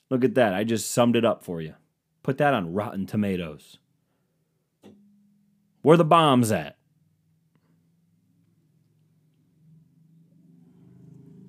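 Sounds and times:
speech: 0.1s - 3.8s, 5.8s - 6.8s
car passing by: 9.2s - 11.4s.

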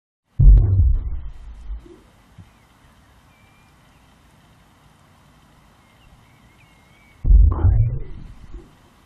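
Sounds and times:
faint steady hiss: 0.3s - 9.0s
whale heartbeat: 0.4s - 1.8s, 7.2s - 8.7s.

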